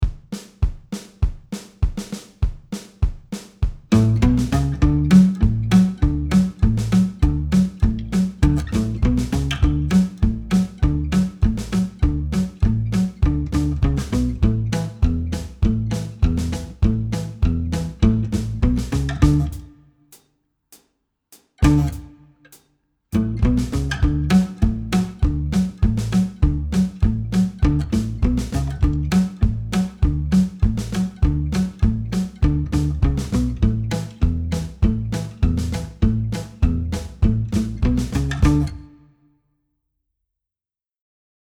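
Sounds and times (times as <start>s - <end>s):
country guitar: 3.9s - 19.7s, 21.6s - 22.2s, 23.2s - 39.0s.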